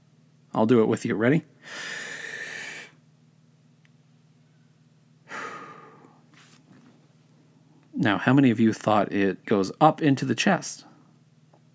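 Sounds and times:
faint steady hum: 0.0 - 11.7
speech: 0.5 - 2.1, 8.0 - 10.9
person taking a deep breath: 1.6 - 3.0, 5.3 - 6.2.

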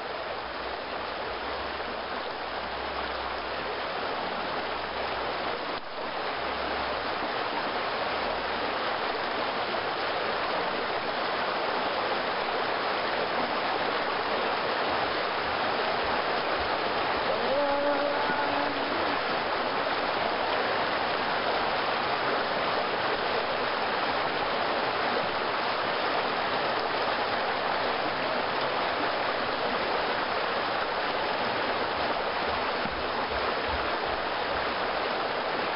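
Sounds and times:
water flowing in the canals of Lijiang Old Town in China: 0.0 - 35.7
faint voice: 17.2 - 19.5.

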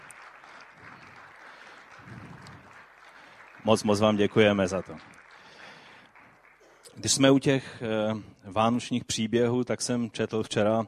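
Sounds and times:
crowd applauding: 0.0 - 7.5
speech: 3.6 - 5.1, 7.0 - 10.8.

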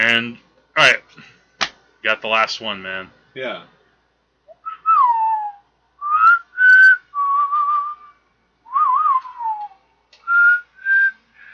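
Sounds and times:
speech: 0.2 - 1.3, 2.0 - 3.8
whistled melody from a film theme: 4.5 - 8.1, 8.7 - 11.2.

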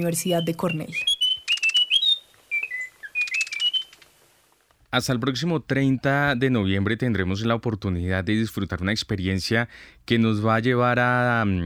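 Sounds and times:
speech: 0.0 - 1.2, 4.9 - 11.6
Munchique wood wren song: 0.0 - 4.2.

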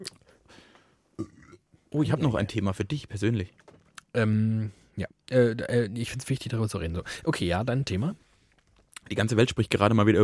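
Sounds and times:
person burping: 1.2 - 1.7
speech: 1.9 - 3.6, 4.2 - 8.2, 9.0 - 10.2.

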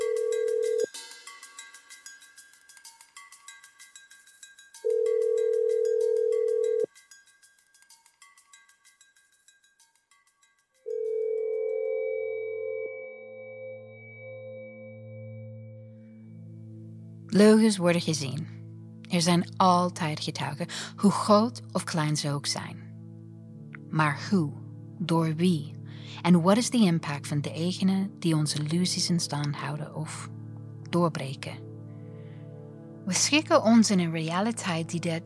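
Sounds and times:
telephone dial tone: 0.0 - 0.9, 4.9 - 6.9, 10.9 - 13.1
speech: 17.4 - 18.6, 19.2 - 22.8, 23.9 - 31.6, 33.1 - 35.2.

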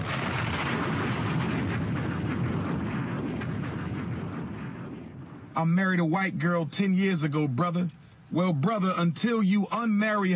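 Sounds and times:
bombs exploding: 0.0 - 6.5
speech: 5.6 - 10.3.

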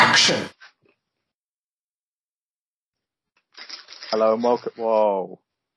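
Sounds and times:
speech: 0.2 - 0.6, 4.2 - 5.5
eating crisps: 3.5 - 4.1.

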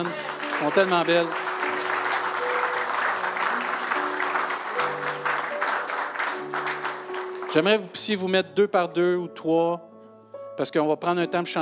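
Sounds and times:
speech: 0.0 - 1.4, 7.6 - 9.9, 10.6 - 11.5
audience applauding: 0.0 - 7.9.

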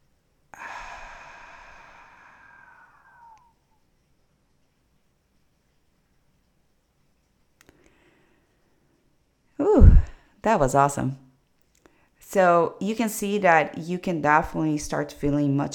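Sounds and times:
deep inhale through nose: 0.6 - 3.4
deep breath out through the mouth: 0.6 - 3.5
speech: 9.6 - 11.2, 12.3 - 15.7.

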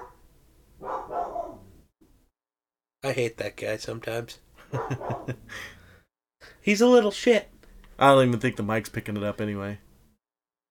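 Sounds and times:
dog barking: 0.0 - 0.2, 0.8 - 1.8, 4.7 - 5.4
speech: 3.0 - 5.8, 6.6 - 9.8.

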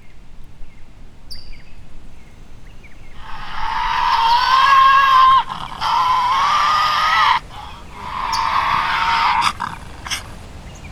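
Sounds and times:
Tasmanian devil harsh raspy screaming cries: 3.2 - 10.5.

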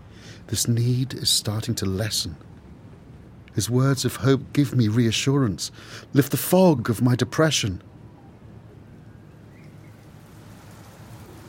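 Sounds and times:
speech: 0.5 - 2.6, 3.6 - 7.9
heavy rain falling: 10.1 - 11.4.

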